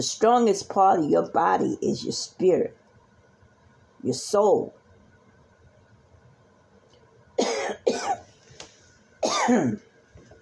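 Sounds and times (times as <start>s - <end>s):
speech: 0.0s - 2.8s, 4.0s - 4.8s, 9.5s - 9.9s
person coughing harshly: 7.4s - 8.3s, 9.2s - 9.8s.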